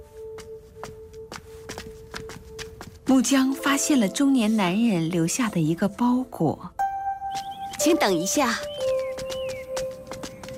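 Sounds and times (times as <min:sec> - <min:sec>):
footsteps of a person walking away: 0:00.0 - 0:03.8, 0:07.2 - 0:10.5
speech: 0:03.1 - 0:06.8, 0:07.8 - 0:08.8.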